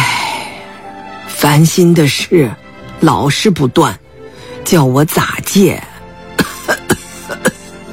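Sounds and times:
speech: 1.4 - 4.0, 4.7 - 5.9
elderly man with asthma coughing while smoking a cigarette: 6.4 - 7.8.

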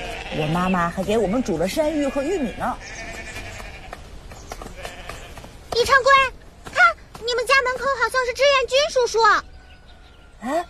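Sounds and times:
sheep bleating from a flock being herded home: 0.0 - 4.0, 4.8 - 5.4
noisy outdoor background: 0.0 - 10.6
speech: 0.3 - 3.2, 5.8 - 6.4, 7.2 - 9.5, 10.4 - 10.6.

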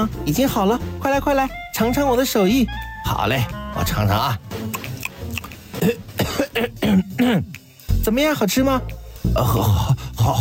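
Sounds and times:
speech: 0.0 - 4.8, 5.8 - 10.3
person coughing forcefully: 5.8 - 7.6.

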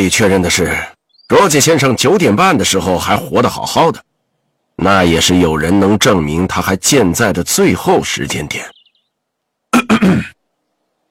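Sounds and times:
speech: 0.0 - 4.1, 4.8 - 8.8, 9.7 - 10.4
short polite cough with throat-clear: 9.7 - 10.4.

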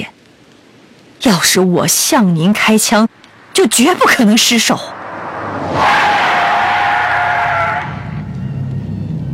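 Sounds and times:
speech: 1.2 - 5.0
car tires hissing and squealing while braking: 5.0 - 9.2.

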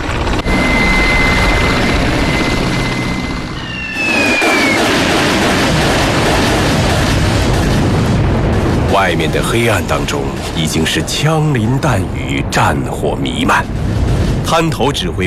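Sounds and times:
powered paragliders and hang gliders taking off with motor roar: 0.0 - 8.7
speech: 9.0 - 15.2.

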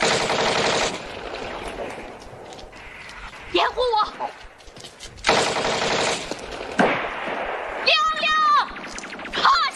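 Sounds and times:
soldiers' gunfire aimed at a fleeing boy: 0.0 - 1.9, 5.3 - 9.6.

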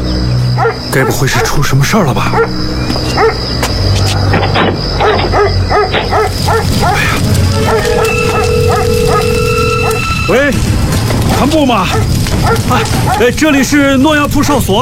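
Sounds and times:
dog barking and yipping excitedly: 0.6 - 1.6, 2.3 - 3.5, 5.0 - 10.1, 11.9 - 13.4
speech: 0.9 - 3.7, 4.3 - 9.2, 10.3 - 14.7
high tonal sounds: 7.2 - 11.1.

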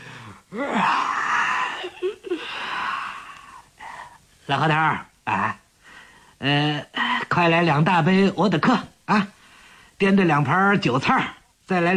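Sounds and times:
man yawning with a breathy rising groan: 0.2 - 4.1
speech: 0.5 - 1.2, 4.5 - 5.6, 6.4 - 9.4, 10.0 - 11.9.

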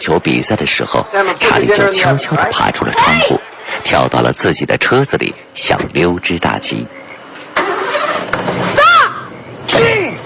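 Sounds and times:
speech: 0.0 - 7.0
car engine cranking, starting and revving: 7.5 - 8.6.

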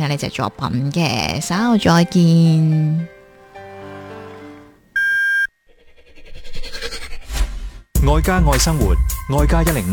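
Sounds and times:
speech: 0.0 - 3.1, 8.1 - 9.9
radio half-hour time signal beep: 5.0 - 5.6.

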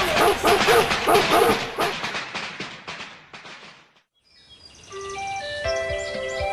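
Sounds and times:
dog barking in a noisy street: 0.0 - 2.0
high chirping and whistling tones: 4.3 - 6.5.

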